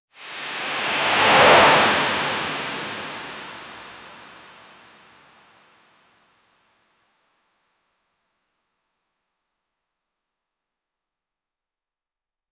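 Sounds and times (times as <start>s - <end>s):
swoosh sounds for motion graphics: 0.4s - 3.8s.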